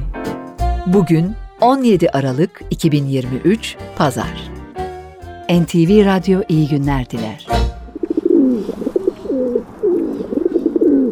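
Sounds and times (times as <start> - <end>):
speech: 0.9 - 4.6, 5.5 - 7.6
pigeon cooing in soft low throaty warbling phrases: 7.9 - 11.1.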